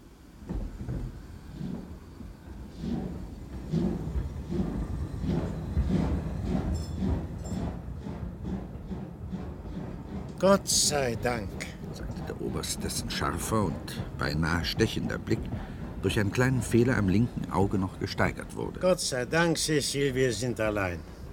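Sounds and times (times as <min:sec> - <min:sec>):
train rumbling as it gets underway: 0:00.0 - 0:21.3
brief metallic squeal of a train: 0:04.5 - 0:08.2
speech: 0:10.4 - 0:11.7, 0:12.5 - 0:21.2.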